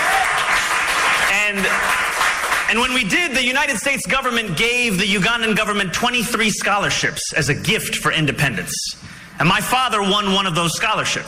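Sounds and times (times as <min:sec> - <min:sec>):
audience clapping: 0:00.0 - 0:03.1
speech: 0:01.5 - 0:02.0, 0:02.7 - 0:11.2.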